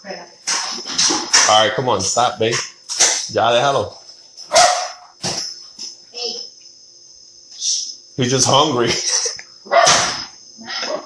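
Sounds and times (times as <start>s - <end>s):
speech: 0.0s - 0.4s, 1.5s - 2.7s, 3.3s - 4.0s, 8.2s - 9.2s
faint continuous high-pitched hum: 0.0s - 11.0s
dog barking: 4.5s - 5.0s, 9.7s - 11.0s.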